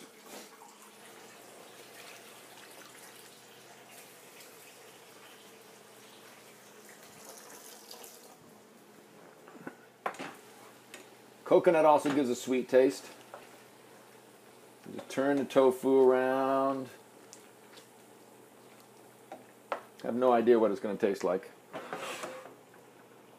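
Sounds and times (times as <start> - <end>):
water running from a tap into cooking pots: 0.0 - 8.4
speech: 11.5 - 13.2, 15.2 - 17.0, 20.1 - 21.6.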